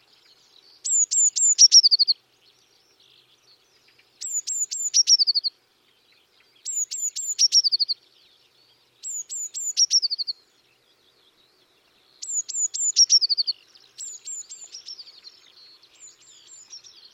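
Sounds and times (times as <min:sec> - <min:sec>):
Eurasian blue tit Cyanistes caeruleus calling: 0:00.8 - 0:02.2, 0:04.2 - 0:05.5, 0:06.6 - 0:08.0, 0:09.0 - 0:10.4, 0:12.2 - 0:15.1.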